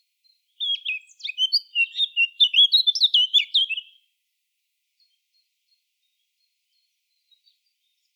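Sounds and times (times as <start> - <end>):
Eurasian blackcap song, Sylvia atricapilla: 0.6 - 3.9.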